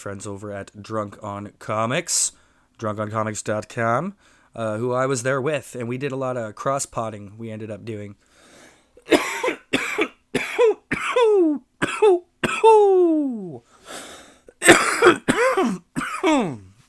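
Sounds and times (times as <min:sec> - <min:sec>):
speech: 0:00.0 - 0:08.3
person coughing with a tickle in the throat: 0:09.0 - 0:13.1, 0:14.6 - 0:16.7
throat clearing: 0:09.1 - 0:12.9, 0:14.6 - 0:16.7.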